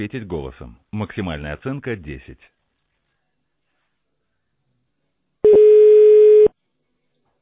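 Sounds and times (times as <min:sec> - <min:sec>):
speech: 0:00.0 - 0:02.6
steady electronic telephone connection beep: 0:05.5 - 0:06.5.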